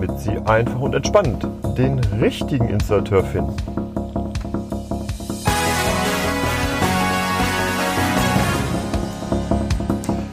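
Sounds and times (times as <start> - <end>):
speech: 0.2 - 3.9
short bright instrumental podcast intro jingle with punchy beat: 5.3 - 10.1.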